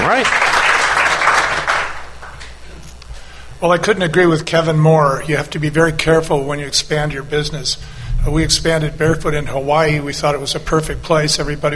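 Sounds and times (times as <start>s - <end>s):
audience applause: 0.0s - 2.6s
speech: 0.1s - 0.5s, 3.6s - 11.7s.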